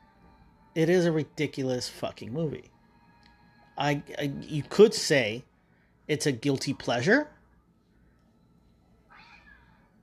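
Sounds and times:
faint low hum: 0.0s - 10.0s
speech: 0.8s - 2.7s, 3.8s - 5.5s, 6.1s - 7.4s
cat meowing: 9.1s - 9.9s.

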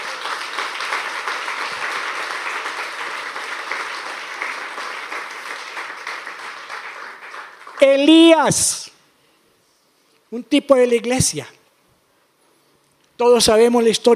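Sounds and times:
large crowd applauding: 0.0s - 8.4s
speech: 7.8s - 8.8s, 10.3s - 11.6s, 13.2s - 14.1s.

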